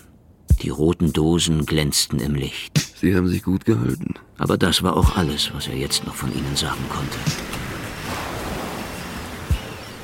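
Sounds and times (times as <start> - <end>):
speech: 0.6 - 7.6
rainfall on a beach: 6.0 - 10.0
waves breaking on a beach in the rain: 6.4 - 10.0.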